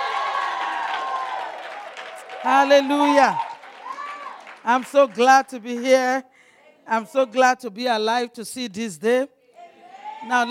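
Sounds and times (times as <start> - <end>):
audience cheering voices: 0.0 - 5.6, 9.6 - 10.5
large audience clapping: 0.0 - 6.1
speech: 2.4 - 3.4, 4.6 - 6.3, 6.9 - 9.4, 10.2 - 10.5.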